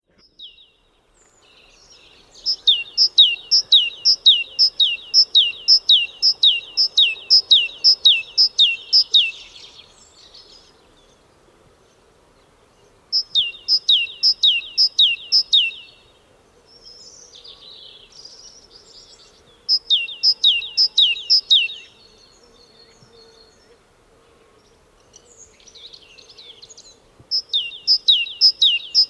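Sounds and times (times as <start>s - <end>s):
great tit Parus major singing: 1.4s - 10.4s, 13.2s - 16.0s, 17.0s - 22.0s, 25.2s - 29.0s.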